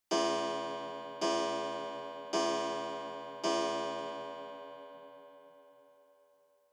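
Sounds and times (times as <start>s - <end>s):
long pendulum clock chime: 0.2s - 4.8s.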